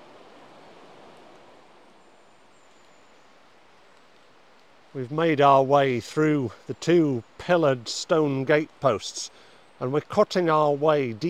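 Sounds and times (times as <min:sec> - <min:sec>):
river flowing: 0:00.0 - 0:11.2
speech: 0:05.0 - 0:11.2.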